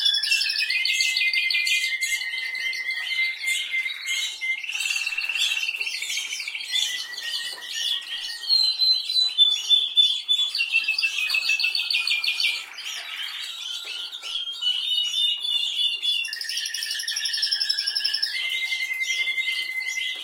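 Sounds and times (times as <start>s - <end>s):
canary singing: 0.0s - 20.2s.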